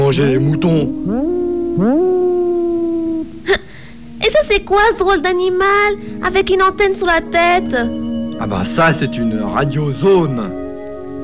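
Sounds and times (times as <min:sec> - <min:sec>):
wolf howling: 0:00.0 - 0:04.2, 0:07.2 - 0:11.2
speech: 0:00.1 - 0:02.3, 0:04.3 - 0:10.6.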